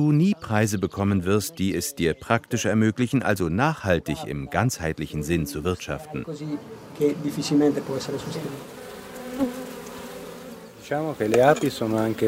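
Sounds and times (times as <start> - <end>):
speech: 0.0 - 8.8, 10.9 - 12.2
bees buzzing: 4.0 - 12.2.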